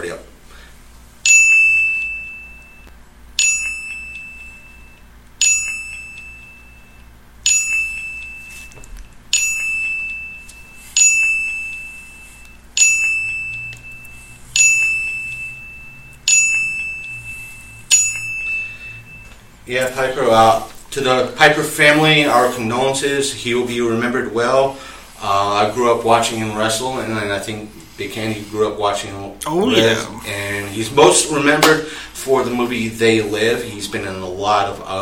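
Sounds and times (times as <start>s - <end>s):
bell dings of a ten-bell salute: 1.3s - 19.5s
speech: 19.7s - 35.0s.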